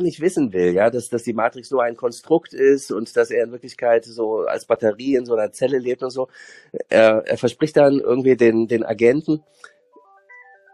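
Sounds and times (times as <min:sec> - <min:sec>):
speech: 0:00.0 - 0:09.8
mobile phone ringtone chiming in bright electronic tones: 0:09.8 - 0:10.7.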